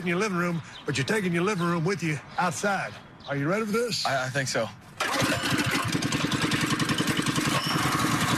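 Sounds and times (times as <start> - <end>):
speech: 0.0 - 5.7
small gasoline engine of a tailgating cart starting and idling: 5.0 - 8.3.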